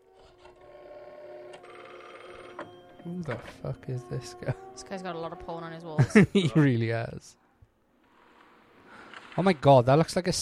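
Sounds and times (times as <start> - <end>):
rotary phone dial whirring and clicking: 0.0 - 3.6
speech: 2.6 - 7.4, 9.4 - 10.4
laughter: 6.0 - 7.0.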